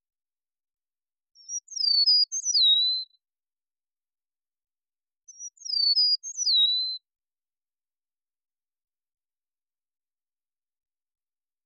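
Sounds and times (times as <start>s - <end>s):
Eastern meadowlark singing a clear whistled phrase: 1.4s - 3.2s, 5.3s - 7.1s.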